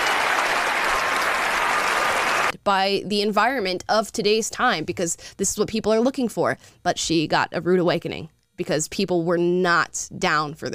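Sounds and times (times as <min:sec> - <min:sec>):
crowd applauding: 0:00.0 - 0:02.6
speech: 0:02.6 - 0:10.7.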